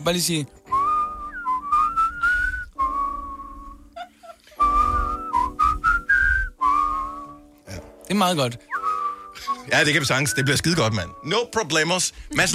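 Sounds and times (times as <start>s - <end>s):
speech: 0.0s - 0.6s, 8.2s - 8.7s, 9.6s - 12.5s
person whistling a lively melody: 0.7s - 3.9s, 4.6s - 7.5s, 8.6s - 11.3s.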